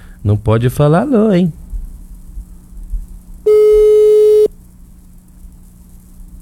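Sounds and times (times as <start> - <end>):
speech: 0.2 - 1.6
faint low hum: 3.5 - 4.5
phone ringback tone while a call is placed: 3.5 - 4.5.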